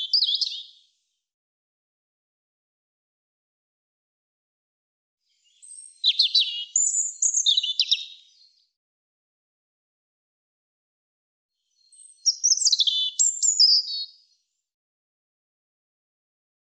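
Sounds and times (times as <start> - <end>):
European robin singing high tumbling warbles and trills: 0.0 - 0.7, 5.5 - 8.2, 11.9 - 14.0.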